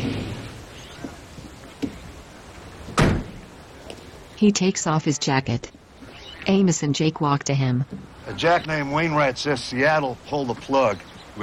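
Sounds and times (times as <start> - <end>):
truck door slamming shut: 2.9 - 3.5
speech: 4.4 - 5.8, 6.5 - 11.4.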